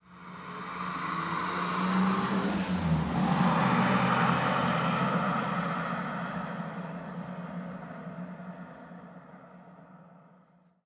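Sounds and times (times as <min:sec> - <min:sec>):
sedan car passing by: 0:00.0 - 0:07.8.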